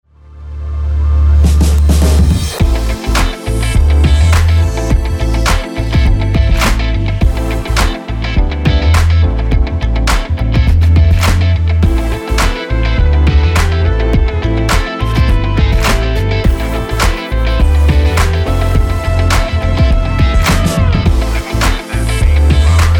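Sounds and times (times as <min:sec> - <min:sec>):
bass line: 0:00.1 - 0:22.9.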